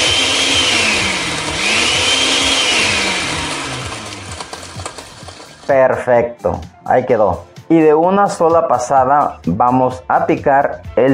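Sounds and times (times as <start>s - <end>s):
blender grinding chipotle peppers: 0.0s - 5.7s
speech: 5.7s - 11.1s.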